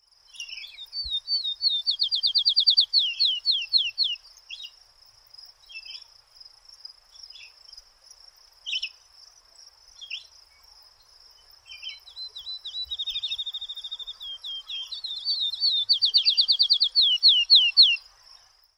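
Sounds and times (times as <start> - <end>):
field sparrow: 0.0 - 4.8, 11.3 - 18.5.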